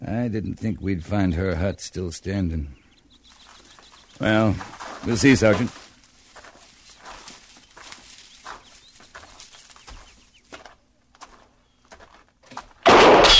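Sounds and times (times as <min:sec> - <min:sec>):
speech: 0:00.1 - 0:02.8, 0:04.2 - 0:05.8
gunshot fired from a hut: 0:12.8 - 0:13.3.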